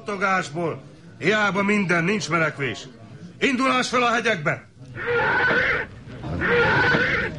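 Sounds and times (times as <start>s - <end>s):
speech: 0.1s - 7.3s
spooked horse whinnying shrilly: 5.0s - 7.3s.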